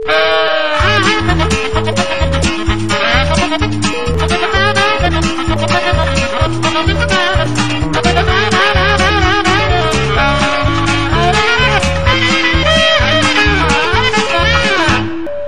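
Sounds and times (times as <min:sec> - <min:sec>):
saxophone instrumental: 0:00.0 - 0:15.4.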